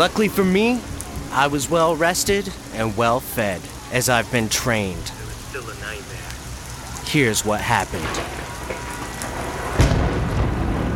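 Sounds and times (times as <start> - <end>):
speech: 0.0 - 6.1, 7.1 - 8.4
steady heavy rain: 0.0 - 10.9
thunder crack from a lightning storm: 7.8 - 10.9.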